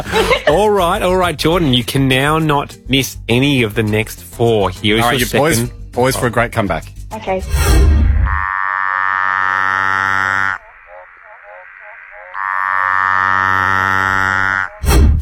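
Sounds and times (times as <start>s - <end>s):
laughter: 0.0s - 1.1s
speech: 0.0s - 8.1s
tree frog calling: 8.2s - 14.8s.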